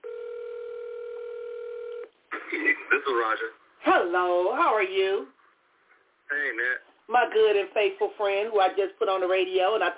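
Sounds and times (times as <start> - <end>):
telephone dialing tone: 0.0 - 2.1
speech: 2.5 - 5.4, 6.3 - 9.9.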